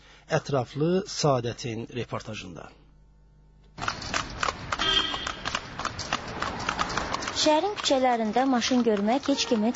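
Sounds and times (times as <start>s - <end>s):
speech: 0.3s - 2.8s, 7.4s - 9.7s
hooves of a horse pulling a carriage clip-clopping along a city street: 3.8s - 9.7s.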